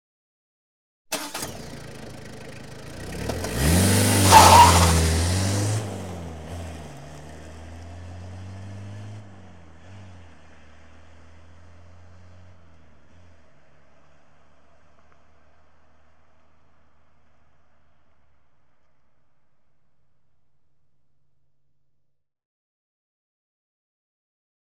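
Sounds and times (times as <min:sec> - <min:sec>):
car switching on outdoors: 0:01.1 - 0:05.7
car departing fast with squeal: 0:03.4 - 0:07.3.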